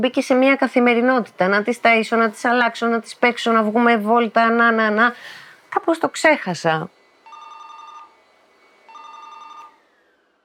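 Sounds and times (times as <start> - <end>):
speech: 0.0 - 7.0
telephone ringing with rapid electronic trill: 7.2 - 8.2, 8.9 - 9.8.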